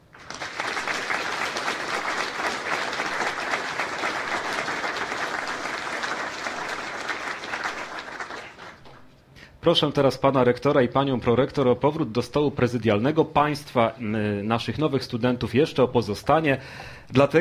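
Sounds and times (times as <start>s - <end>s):
large audience applauding: 0.0s - 9.1s
speech: 9.6s - 17.3s.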